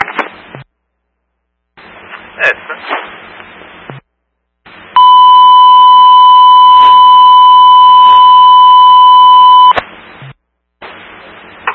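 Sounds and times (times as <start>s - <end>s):
short bursts of crackly static-like noise: 0.0s - 11.7s
speech: 2.4s - 3.1s
fire alarm set off from a pull station: 5.0s - 9.8s.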